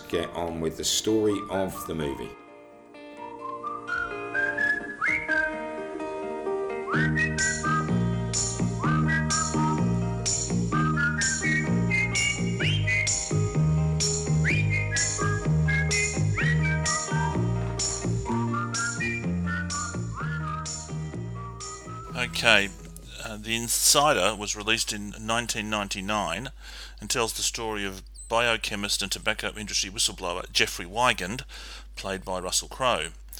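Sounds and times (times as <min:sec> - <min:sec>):
whistled melody: 0:00.0 - 0:06.0, 0:06.7 - 0:22.8
speech: 0:00.1 - 0:02.4, 0:22.6 - 0:22.8, 0:23.5 - 0:33.2
rhythmic percussion accompaniment with low tones: 0:08.3 - 0:11.4, 0:12.1 - 0:17.2, 0:17.8 - 0:18.9.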